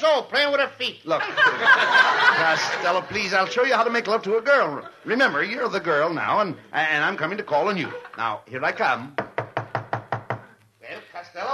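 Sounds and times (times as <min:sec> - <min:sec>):
speech: 0:00.0 - 0:09.2
laughter: 0:01.1 - 0:05.9, 0:07.7 - 0:08.4
knocks on a door: 0:09.2 - 0:10.5.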